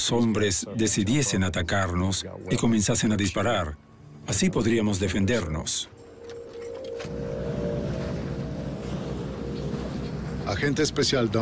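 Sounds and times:
speech: 0.0 - 6.0, 10.5 - 11.3
wind: 5.9 - 11.3
boat engine droning underway on the water: 6.0 - 11.3
water noise: 6.0 - 11.3.

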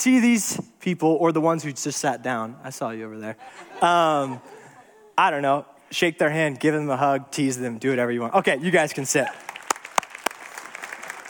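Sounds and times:
speech: 0.0 - 4.6, 5.2 - 9.5
laughter: 3.4 - 5.2
church audience clapping for students: 9.1 - 11.2.

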